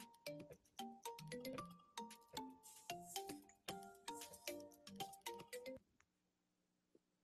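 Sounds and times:
melodic phone ringtone of incoming call: 0.0s - 5.8s.

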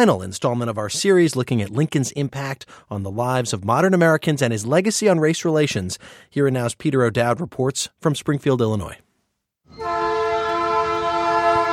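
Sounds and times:
speech: 0.0s - 9.1s
freight train horn blast: 9.7s - 11.7s.

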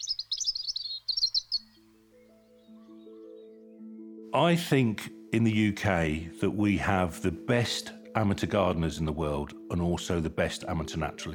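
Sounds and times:
high twittering birdsong: 0.0s - 4.2s
speech: 4.4s - 11.3s.

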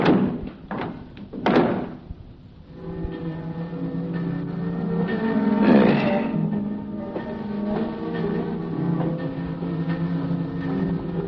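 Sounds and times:
heavy morgue compartment door banging shut: 0.0s - 2.1s
steady low mechanical hum: 0.0s - 11.2s.

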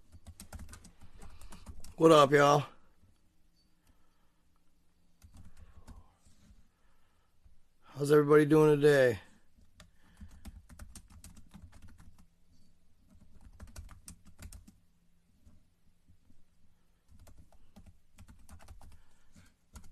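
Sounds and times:
typing on a computer keyboard: 0.0s - 2.0s, 5.2s - 6.0s, 9.6s - 12.3s, 13.0s - 14.8s, 17.1s - 19.1s, 19.7s - 19.9s
speech: 2.0s - 2.7s, 8.0s - 9.3s.

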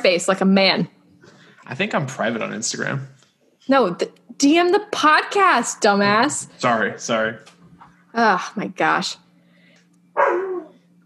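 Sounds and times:
speech: 0.0s - 1.0s, 1.6s - 9.2s
faint low hum: 0.0s - 11.0s
dog barking: 10.2s - 10.7s.

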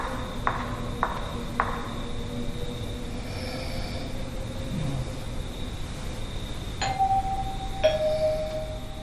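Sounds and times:
steady low hum: 0.0s - 9.0s
hotel doorbell chiming: 6.8s - 9.0s.

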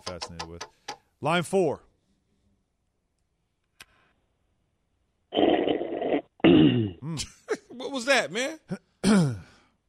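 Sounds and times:
speech: 0.1s - 1.9s, 7.1s - 9.2s
male caller clearing throat on a phone line: 6.4s - 7.8s, 8.6s - 9.6s.

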